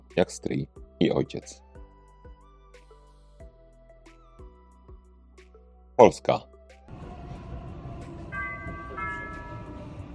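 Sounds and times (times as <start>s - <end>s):
speech: 0.2s - 1.6s, 6.0s - 6.5s
Warsaw metro train running: 6.9s - 10.1s.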